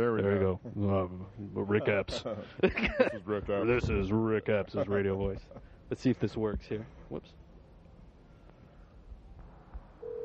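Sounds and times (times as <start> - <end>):
low rumble: 0.0 - 10.2
speech: 0.1 - 7.4
laughter: 1.6 - 3.8, 4.6 - 5.8
electronic telephone ring tone: 10.0 - 10.2.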